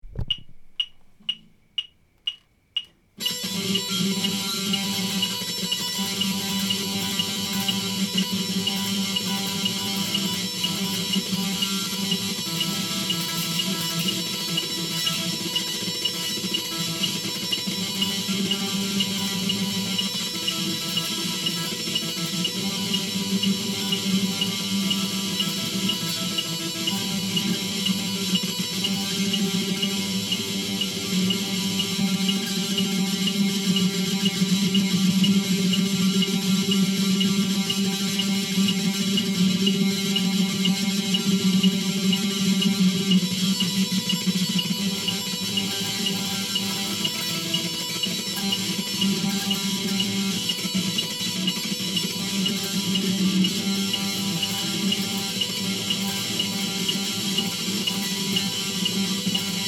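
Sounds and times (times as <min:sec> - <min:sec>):
metronome clicking: 0:00.0 - 0:59.6
messy rock tremolo picking: 0:03.2 - 0:59.6.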